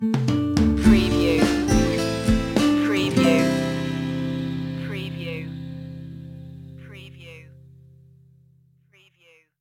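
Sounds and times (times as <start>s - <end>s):
drums: 0.0s - 4.8s.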